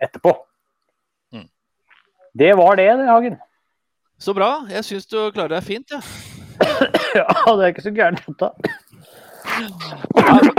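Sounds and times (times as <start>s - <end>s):
speech: 0.0s - 0.4s, 2.4s - 3.5s, 4.2s - 6.3s, 7.1s - 8.8s, 9.6s - 10.4s
harsh bursting coughs: 6.5s - 7.6s, 8.6s - 10.5s
person clearing throat with a rough rasp: 6.6s - 7.5s, 8.6s - 10.5s.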